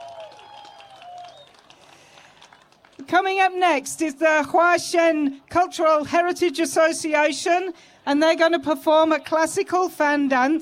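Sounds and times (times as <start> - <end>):
audience applause for young dance performers from a community cultural association: 0.0 - 3.0
crowd noise: 0.0 - 10.5
speech: 3.0 - 10.5.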